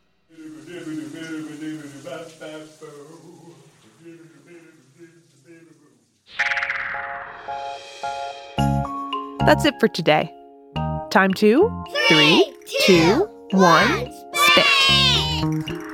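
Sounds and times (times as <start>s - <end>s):
speech: 0.8s - 4.4s, 9.5s - 10.4s, 11.1s - 15.7s
person scat singing jazz nonsense syllables: 12.0s - 15.4s.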